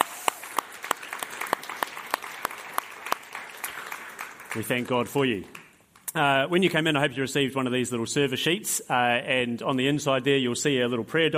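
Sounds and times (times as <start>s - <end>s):
audience applauding: 0.0s - 5.8s
speech: 4.6s - 11.3s.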